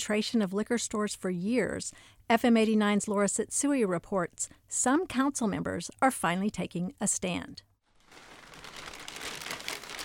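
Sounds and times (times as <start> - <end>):
speech: 0.0 - 7.7
plastic bag being opened on an office desk: 7.8 - 10.0.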